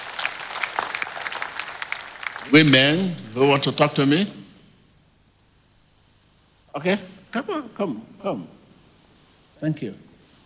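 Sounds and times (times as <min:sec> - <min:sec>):
audience clapping for a woman after her teaching: 0:00.0 - 0:03.3
speech: 0:02.5 - 0:04.4, 0:06.8 - 0:08.6, 0:09.6 - 0:10.1.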